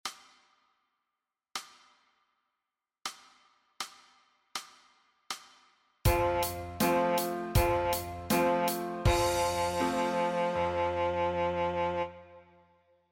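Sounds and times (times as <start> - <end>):
saxophone playing D note: 6.1 - 12.7.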